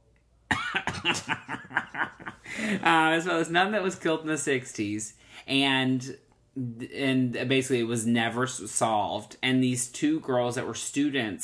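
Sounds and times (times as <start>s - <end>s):
fit of harsh coughing: 0.5s - 1.5s
laughter: 0.5s - 2.9s
speech: 1.0s - 11.4s.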